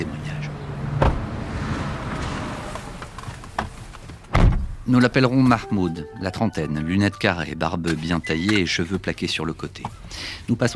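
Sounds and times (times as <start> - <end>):
city traffic noise: 0.0 - 6.2, 7.2 - 10.7
low road rumble inside a moving car in city traffic: 0.0 - 10.7
speech: 4.9 - 10.7.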